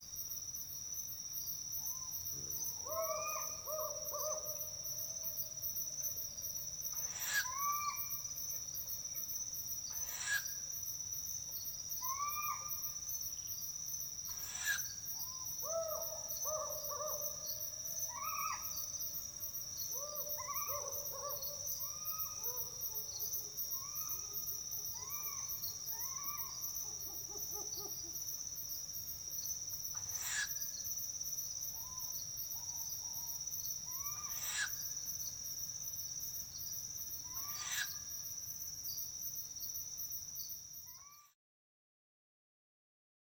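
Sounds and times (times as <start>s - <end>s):
Hume's owl pulsed hooting: 2.8s - 4.6s, 7.0s - 8.2s, 10.0s - 10.6s, 12.0s - 12.9s, 14.3s - 18.8s, 25.0s - 28.2s, 29.9s - 30.6s, 33.9s - 34.8s, 37.3s - 38.0s
Hume's owl male, female and nestling calling: 2.9s - 4.6s, 7.0s - 8.1s, 12.0s - 12.8s, 14.3s - 17.4s, 18.0s - 18.8s, 19.9s - 22.6s, 25.0s - 28.2s, 30.0s - 30.6s, 37.3s - 38.0s.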